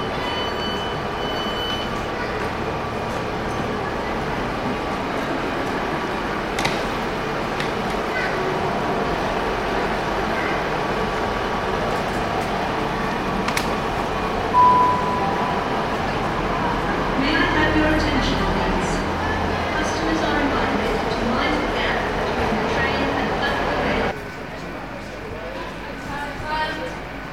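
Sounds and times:
low rumble of idling trains at a railway station: 0:00.0 - 0:27.3
murmur of passengers talking at a railway station: 0:00.0 - 0:27.3
sharp clicks and knocks: 0:06.6 - 0:06.9.

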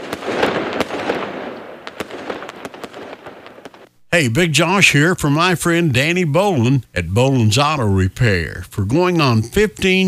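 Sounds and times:
fireworks exploding: 0:00.0 - 0:04.1
speech: 0:04.1 - 0:10.0.

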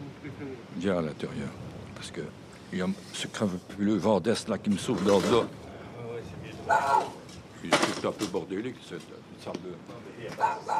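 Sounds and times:
speech: 0:00.8 - 0:05.6, 0:06.7 - 0:10.7
murmur of indoor noise: 0:02.5 - 0:10.7
dog barking: 0:06.6 - 0:07.2, 0:10.4 - 0:10.7.

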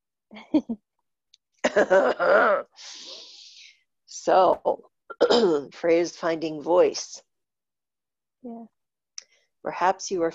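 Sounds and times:
speech: 0:00.4 - 0:00.9, 0:01.7 - 0:03.2, 0:04.2 - 0:07.3, 0:08.4 - 0:08.8, 0:09.6 - 0:10.3
person with a strong tickle in the throat clearing throat: 0:05.1 - 0:05.6.

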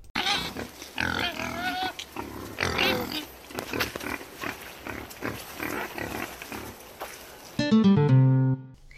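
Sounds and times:
wild boar grunting and squealing: 0:00.2 - 0:06.8
short musical tone: 0:07.6 - 0:08.8.

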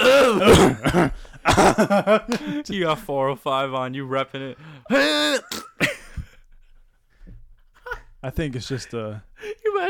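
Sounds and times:
person fake coughing: 0:00.0 - 0:01.9, 0:04.9 - 0:06.3
speech: 0:00.3 - 0:05.9, 0:08.2 - 0:09.8.

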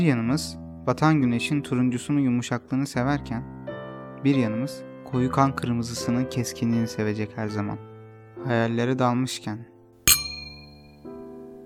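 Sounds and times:
speech: 0:00.0 - 0:03.6, 0:04.2 - 0:09.7
two wine glasses clinking in a toast: 0:10.1 - 0:10.9.

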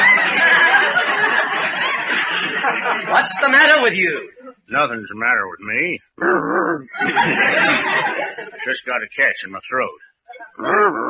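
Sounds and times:
laughter: 0:00.0 - 0:03.9, 0:06.9 - 0:08.9
speech: 0:03.1 - 0:11.0
man imitating dog barking: 0:06.2 - 0:06.9, 0:10.6 - 0:11.0.

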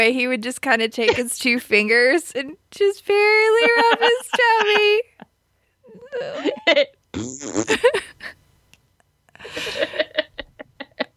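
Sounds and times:
speech: 0:00.0 - 0:05.2, 0:06.1 - 0:08.4, 0:09.4 - 0:10.3
laughter: 0:03.6 - 0:05.2, 0:09.4 - 0:11.1
person imitating fart noises with blown-lip raspberries: 0:07.1 - 0:07.9.

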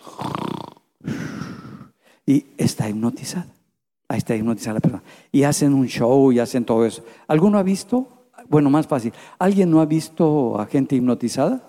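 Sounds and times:
person imitating a hypnotized person snoring with rattling snores: 0:00.0 - 0:02.0
speech: 0:02.3 - 0:11.6.

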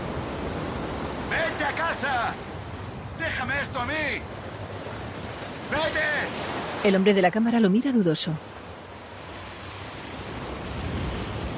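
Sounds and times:
ocean waves washing ashore: 0:00.0 - 0:11.5
speech: 0:01.4 - 0:02.5, 0:03.2 - 0:04.4, 0:05.7 - 0:08.6.

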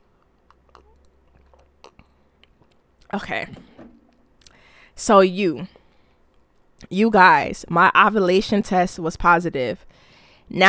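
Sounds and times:
low steady hum: 0:00.0 - 0:10.6
person sipping a drink with wet mouth clicks and a gulp: 0:00.2 - 0:02.8
speech: 0:03.1 - 0:03.8, 0:05.0 - 0:05.8, 0:06.9 - 0:10.6.

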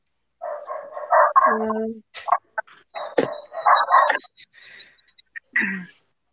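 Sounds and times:
dog barking from downstairs: 0:00.4 - 0:01.8, 0:03.0 - 0:04.3
speech: 0:01.5 - 0:02.4, 0:05.6 - 0:06.0.

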